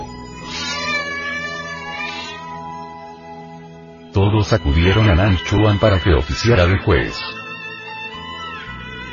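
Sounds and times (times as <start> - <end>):
cat yowling meow: 0.4 - 2.8
speech: 4.3 - 7.4.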